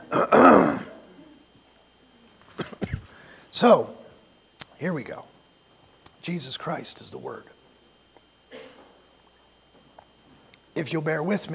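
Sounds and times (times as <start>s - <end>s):
loud throat clearing: 0.0s - 1.4s, 2.5s - 3.1s, 8.5s - 9.0s
short sharp coughs: 0.1s - 1.0s, 2.5s - 3.1s, 8.5s - 9.0s
speech: 3.6s - 4.0s, 4.8s - 5.3s, 6.3s - 7.6s, 10.8s - 11.5s.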